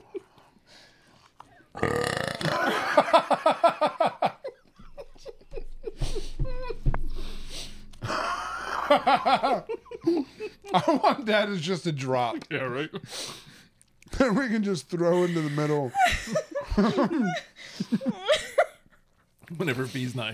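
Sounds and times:
speech: 1.8s - 2.0s, 3.0s - 3.6s, 10.8s - 13.4s, 14.3s - 18.0s, 19.6s - 20.3s
loud drawn-out throaty belches: 1.8s - 2.7s
laughter: 2.4s - 6.9s, 8.0s - 11.7s, 15.0s - 18.8s.

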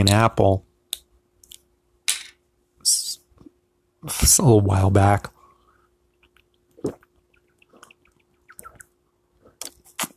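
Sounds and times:
speech: 0.0s - 0.6s, 4.0s - 5.4s
faint steady hum: 0.0s - 10.1s
person drinking water with wet gulps and swallows: 6.2s - 10.1s.

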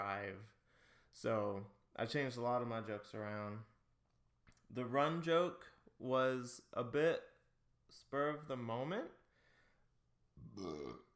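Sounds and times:
speech: 0.0s - 3.7s, 4.7s - 7.3s, 7.9s - 9.2s, 10.4s - 11.1s
loud throaty burp: 10.4s - 11.1s.

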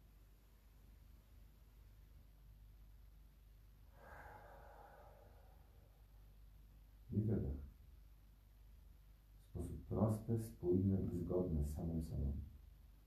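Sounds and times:
slow breathing in through the nose and out: 3.9s - 6.2s
speech: 9.9s - 12.5s.

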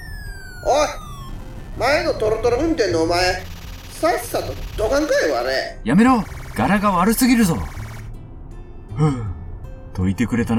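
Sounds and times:
police siren: 0.0s - 5.4s, 6.1s - 8.1s
speech: 1.8s - 7.7s, 9.0s - 9.3s, 10.0s - 10.5s.

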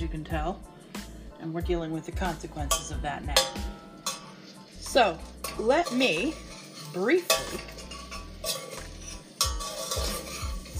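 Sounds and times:
speech: 0.1s - 0.8s, 1.4s - 3.9s, 4.9s - 7.8s
hash browns sizzling in a pot: 2.2s - 10.7s.

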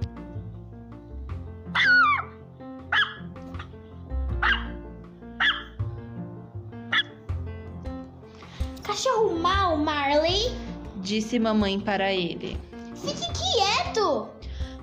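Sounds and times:
dog barking: 1.7s - 2.3s, 2.9s - 3.7s, 4.4s - 4.8s, 5.4s - 5.7s, 6.9s - 7.2s
dog yipping and whining: 1.7s - 2.3s, 2.9s - 3.2s, 4.4s - 4.8s, 5.4s - 5.7s
speech: 9.0s - 14.4s.

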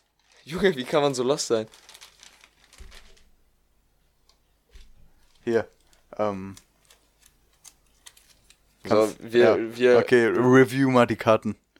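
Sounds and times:
crinkling packaging: 0.0s - 3.4s, 4.7s - 9.2s
speech: 0.5s - 2.0s, 5.5s - 6.6s, 8.8s - 11.6s.

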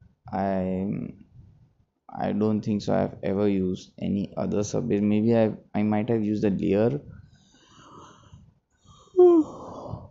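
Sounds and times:
speech: 0.3s - 1.2s, 2.1s - 7.2s
voiced yawn: 9.2s - 10.0s.

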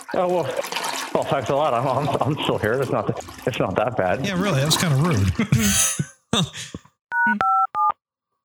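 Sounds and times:
speech: 0.1s - 7.4s
short vocal sound: 4.6s - 5.0s, 5.6s - 6.9s
dual-pitched telephone keypad tones: 7.1s - 8.0s.

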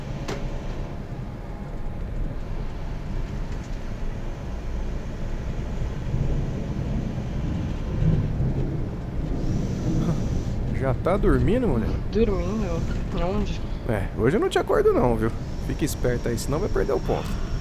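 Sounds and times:
deep low rumble: 1.2s - 15.6s
steady heavy rain: 4.8s - 15.2s
speech: 10.9s - 17.5s.

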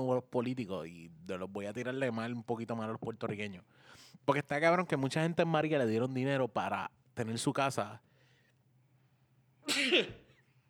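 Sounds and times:
speech: 0.0s - 8.1s, 9.6s - 10.2s
person sneezing: 9.7s - 10.4s.

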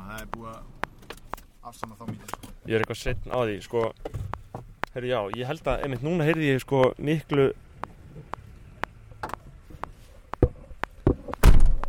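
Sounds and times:
speech: 0.2s - 0.8s, 1.6s - 4.3s, 5.0s - 7.6s
faint clicks and light knocks: 0.2s - 11.8s
door slamming shut: 11.4s - 11.8s.

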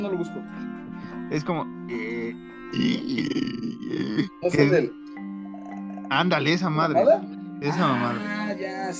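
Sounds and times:
speech: 0.0s - 5.0s, 6.1s - 8.9s
voice imitating croaking with burp-like bursts: 2.7s - 4.9s, 5.5s - 8.3s.

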